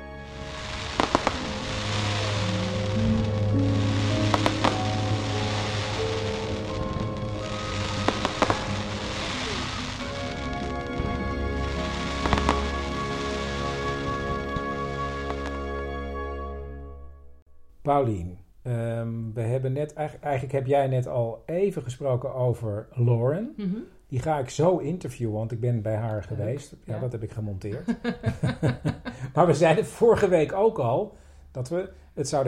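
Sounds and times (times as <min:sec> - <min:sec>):
sustained musical tones: 0:00.0 - 0:17.8
fireworks bangs from a large fireworks display in a park in Sheffield: 0:00.3 - 0:14.6
speech: 0:17.9 - 0:32.4
laughter: 0:27.0 - 0:30.3.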